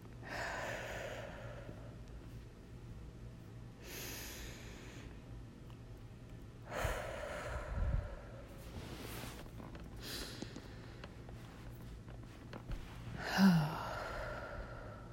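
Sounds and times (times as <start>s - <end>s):
slow deep intentional breathing: 0.2s - 2.3s, 3.8s - 5.3s, 6.7s - 11.8s, 13.0s - 15.1s.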